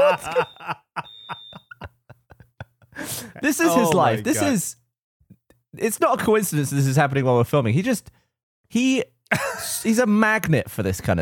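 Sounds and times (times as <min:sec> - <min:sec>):
phone ringing with rhythmic electronic pulses: 0:00.0 - 0:01.7
laughter: 0:00.0 - 0:04.5
speech: 0:00.1 - 0:00.8, 0:03.4 - 0:04.8, 0:05.8 - 0:11.2.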